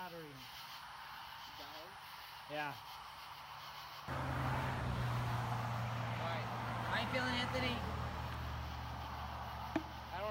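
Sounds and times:
speech: 0:01.6 - 0:03.0, 0:07.1 - 0:08.0
cars passing on a road: 0:04.1 - 0:10.2.

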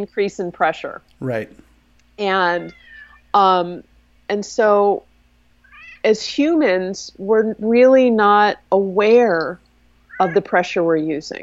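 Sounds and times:
speech: 0:00.0 - 0:01.6, 0:02.2 - 0:05.1, 0:06.0 - 0:09.6, 0:10.2 - 0:11.4
quiet hum: 0:00.0 - 0:11.4
cat meowing: 0:02.5 - 0:03.2, 0:05.7 - 0:06.0, 0:10.1 - 0:10.5.

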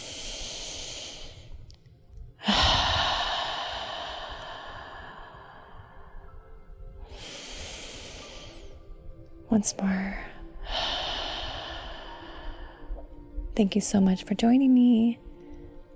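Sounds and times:
deep slow breath: 0:00.0 - 0:01.7, 0:02.4 - 0:09.1, 0:10.2 - 0:13.4
speech: 0:09.6 - 0:10.3, 0:13.6 - 0:15.3.

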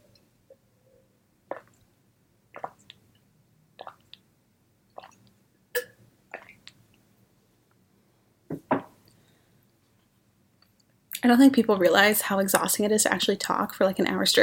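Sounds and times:
person sipping and swallowing water: 0:01.5 - 0:01.8, 0:02.5 - 0:03.1, 0:03.8 - 0:04.2, 0:05.0 - 0:06.8
speech: 0:11.3 - 0:14.4.

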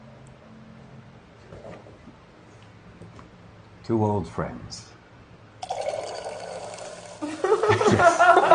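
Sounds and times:
speech: 0:03.9 - 0:04.9
drink poured into a glass: 0:05.6 - 0:07.2
laughter: 0:07.2 - 0:08.5.

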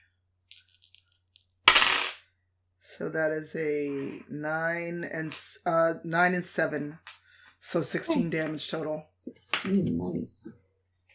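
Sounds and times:
dice rolled in a game rattling across a hard table: 0:00.5 - 0:02.2
speech: 0:03.0 - 0:10.6.

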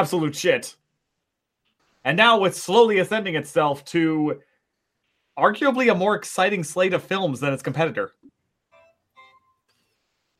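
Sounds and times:
speech: 0:00.0 - 0:00.8, 0:02.0 - 0:04.5, 0:05.4 - 0:08.2
phone alert chiming electronic tones: 0:08.7 - 0:09.7.

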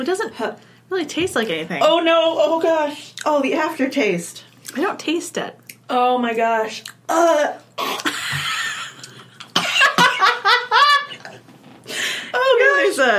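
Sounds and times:
speech: 0:00.0 - 0:08.4, 0:13.0 - 0:13.1
woman gagging and coughing after tasting something gross: 0:07.8 - 0:08.5, 0:09.5 - 0:10.2
laughter: 0:08.1 - 0:11.4.

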